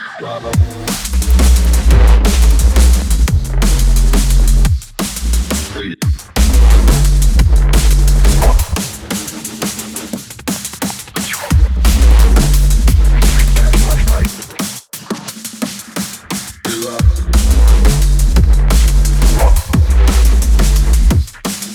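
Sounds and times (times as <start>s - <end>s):
wub bass: 0.4s - 8.8s, 11.5s - 14.3s, 17.0s - 21.4s.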